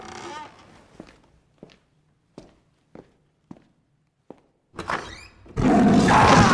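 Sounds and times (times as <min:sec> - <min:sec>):
door creaking open: 0:00.0 - 0:00.9, 0:04.8 - 0:05.6
footsteps across a quiet room: 0:00.6 - 0:03.7.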